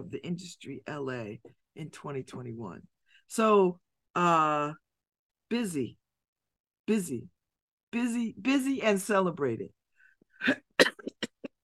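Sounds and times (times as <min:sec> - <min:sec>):
speech: 0:00.0 - 0:04.8, 0:05.5 - 0:06.0, 0:06.9 - 0:09.8, 0:10.4 - 0:10.9
dry hacking cough: 0:10.4 - 0:11.6.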